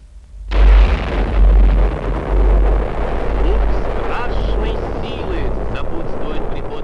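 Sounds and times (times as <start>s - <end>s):
crackling debris from nuclear explosion: 0.0s - 6.8s
loud deep roaring rumble of nuclear explosion: 0.0s - 6.8s
huge nuclear bomb explosion from a large parachute-dropped bomb: 0.3s - 6.8s.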